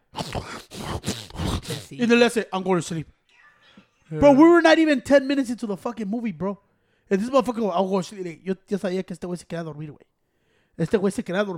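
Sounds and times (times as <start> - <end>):
person imitating throaty gulping of swallowing unchewed pizza: 0.0 - 2.0
speech: 1.9 - 3.2, 4.1 - 10.1, 10.8 - 11.5.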